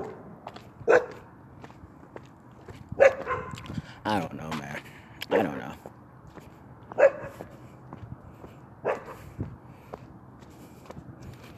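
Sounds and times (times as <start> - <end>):
dogs barking: 0.0 - 1.3, 3.0 - 3.7, 5.2 - 5.7, 6.9 - 7.6, 8.8 - 9.2
speech: 0.9 - 1.2, 4.1 - 4.6.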